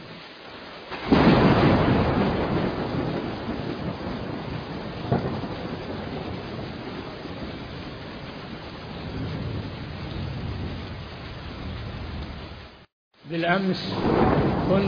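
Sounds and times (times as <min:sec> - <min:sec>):
steady rain pouring down: 0:00.0 - 0:14.8
deep roll of thunder with a sharper crack: 0:00.9 - 0:12.9, 0:13.5 - 0:14.8
speech: 0:13.4 - 0:14.8.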